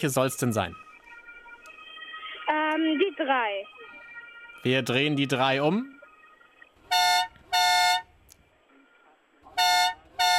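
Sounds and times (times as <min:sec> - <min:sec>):
speech: 0:00.0 - 0:00.8, 0:02.8 - 0:03.9, 0:04.6 - 0:06.0
faint noise: 0:00.0 - 0:10.3
loud vehicle horn honking: 0:06.8 - 0:08.1, 0:09.5 - 0:10.3.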